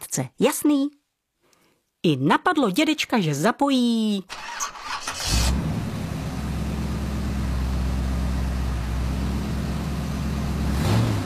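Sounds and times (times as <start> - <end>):
speech: 0.2 - 1.0, 2.0 - 4.6
passenger car engine cranking and revving: 4.9 - 11.2.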